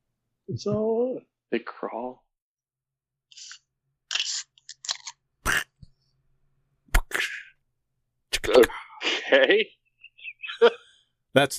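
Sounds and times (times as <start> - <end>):
speech: 0.5 - 2.2, 8.5 - 9.8, 10.6 - 10.8, 11.4 - 11.5
drink cans cracked open: 4.1 - 5.6
laughter: 9.0 - 10.9.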